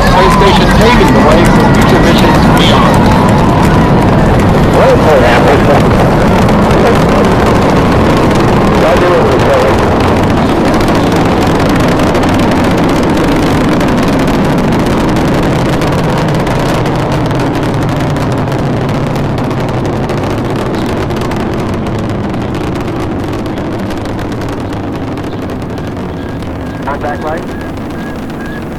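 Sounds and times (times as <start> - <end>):
space shuttle rocket boosters roaring at liftoff: 0.0 - 28.7.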